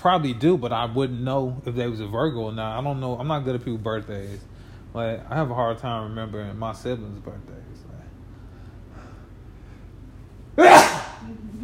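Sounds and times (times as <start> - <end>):
speech: 0.0 - 7.8
quiet hum: 0.0 - 11.6
loud sneeze: 10.6 - 11.3.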